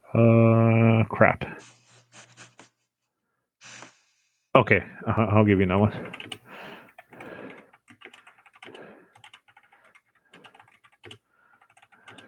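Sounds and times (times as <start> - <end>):
speech: 0.1 - 1.8, 4.6 - 6.2
typing on a computer keyboard: 6.0 - 12.2.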